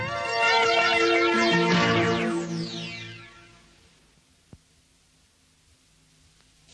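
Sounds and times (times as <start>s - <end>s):
loud wavering tonal passage: 0.1s - 3.7s.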